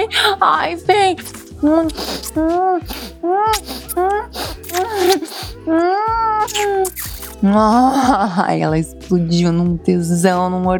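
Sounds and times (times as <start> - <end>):
speech: 0.0 - 10.7
woman moaning: 1.6 - 8.3.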